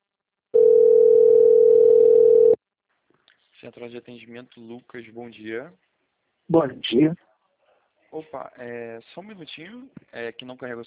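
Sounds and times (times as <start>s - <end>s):
telephone ringing tone: 0.6s - 2.6s
speech: 3.7s - 5.9s, 6.5s - 7.3s, 8.1s - 10.8s.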